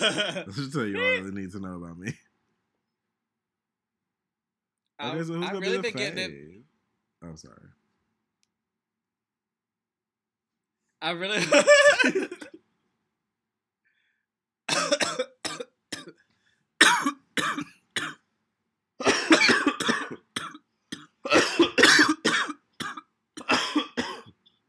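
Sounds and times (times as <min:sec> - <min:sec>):
fit of harsh raspy coughing: 0:00.0 - 0:01.2, 0:11.4 - 0:12.6, 0:14.7 - 0:16.1, 0:16.8 - 0:18.2, 0:19.0 - 0:24.3
laughter: 0:00.0 - 0:02.1, 0:05.5 - 0:06.4, 0:11.4 - 0:12.4
speech: 0:00.0 - 0:02.3, 0:05.0 - 0:07.8, 0:11.0 - 0:12.4.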